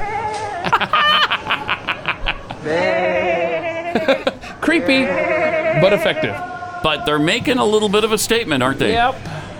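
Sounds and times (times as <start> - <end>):
laughter: 0.5 - 6.4
speech: 2.6 - 3.0, 4.1 - 9.3
people in sheep masks imitating sheep bleating in a store: 2.6 - 6.6.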